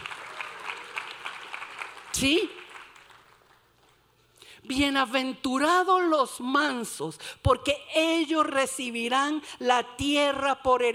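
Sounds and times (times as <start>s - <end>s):
audience clapping: 0.0s - 4.1s
speech: 2.2s - 2.6s, 4.7s - 10.9s.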